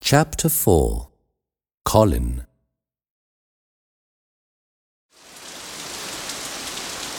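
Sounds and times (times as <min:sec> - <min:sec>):
speech: 0:00.1 - 0:01.1, 0:01.8 - 0:02.5
steady rain pattering on a surface: 0:05.2 - 0:07.1.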